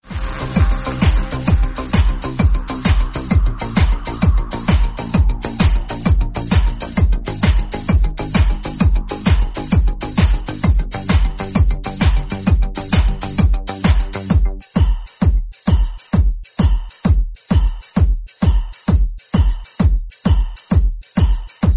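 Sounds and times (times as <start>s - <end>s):
German techno ringtone: 0.0s - 21.7s.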